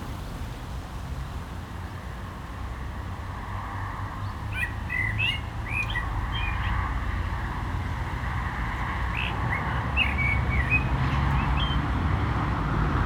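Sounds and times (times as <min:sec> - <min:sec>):
low rumble of cars on a nearby road: 0:00.0 - 0:13.0
common blackbird singing in a barranco: 0:04.6 - 0:06.7, 0:09.1 - 0:11.8.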